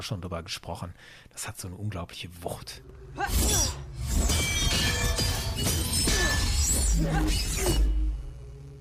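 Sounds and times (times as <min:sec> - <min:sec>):
speech: 0:00.0 - 0:04.3, 0:06.6 - 0:07.9
lightsaber striking beskar metal: 0:03.2 - 0:08.0.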